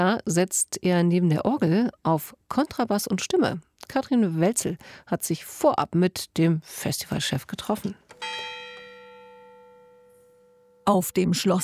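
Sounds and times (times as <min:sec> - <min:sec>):
speech: 0:00.0 - 0:08.5, 0:10.9 - 0:11.6
church bells of a castle church ringing: 0:08.2 - 0:11.6.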